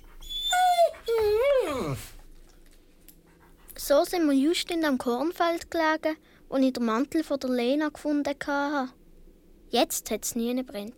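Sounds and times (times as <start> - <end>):
dog whimpering and panting, begging: 0.0 - 2.2
speech: 3.9 - 9.0, 9.7 - 10.9.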